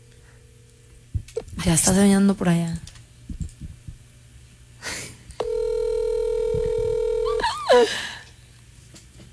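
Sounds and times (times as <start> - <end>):
speech: 1.6 - 2.9, 7.8 - 8.1
phone ringback tone: 5.4 - 7.5.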